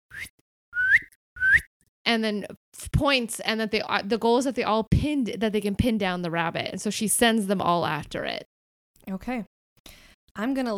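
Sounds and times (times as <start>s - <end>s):
person whistling to call dogs: 0.1s - 1.7s
speech: 2.1s - 8.5s, 9.1s - 10.7s.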